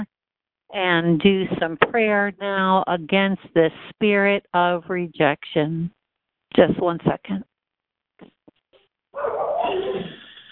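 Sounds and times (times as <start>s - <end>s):
speech: 0.7s - 6.0s, 6.6s - 7.5s
dog barking: 9.2s - 10.1s
dog drawn-out whining bark: 9.2s - 10.3s.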